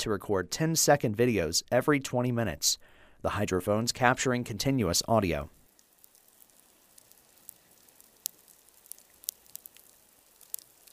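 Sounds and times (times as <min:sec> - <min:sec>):
speech: 0:00.0 - 0:05.6
reef fish feeding underwater: 0:05.7 - 0:10.9
snapping shrimp crackling on a reef underwater: 0:05.7 - 0:10.9.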